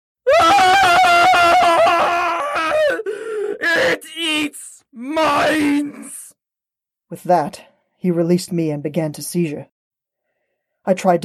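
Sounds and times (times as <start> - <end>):
man's throat-scraping scream: 0.2 - 6.4
man gasping: 2.9 - 3.7
speech: 7.1 - 9.7, 10.8 - 11.2.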